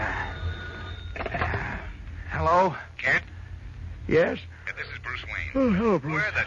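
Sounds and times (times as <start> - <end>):
telephone bell ringing: 0.0 - 1.8
speech: 2.6 - 3.3, 4.1 - 6.4.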